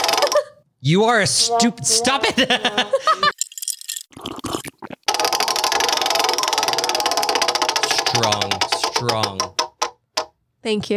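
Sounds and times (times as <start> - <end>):
stiff prize wheel in need of oil rattling: 0.0 - 0.4, 5.1 - 10.2
speech: 0.8 - 3.3, 10.6 - 10.9
laughter: 2.2 - 3.3.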